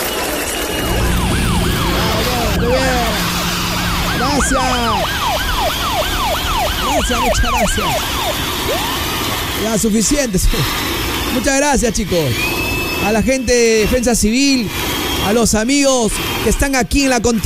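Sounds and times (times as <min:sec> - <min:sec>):
low engine rumble: 0:00.6 - 0:08.7
Peruvian National Police car sirens wailing outdoors: 0:00.6 - 0:09.4
speech: 0:04.4 - 0:05.2, 0:07.0 - 0:09.0, 0:09.6 - 0:17.4.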